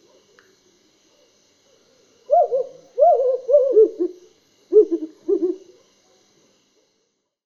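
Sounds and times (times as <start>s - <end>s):
African wood owl hooting: 2.3s - 5.8s.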